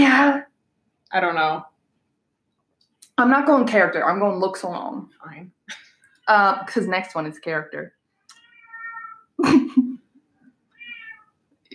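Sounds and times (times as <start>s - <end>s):
speech: 1.1s - 1.7s, 3.2s - 8.0s, 9.4s - 9.9s
cat meowing: 8.3s - 9.4s, 10.7s - 11.4s
person laughing: 9.4s - 10.0s.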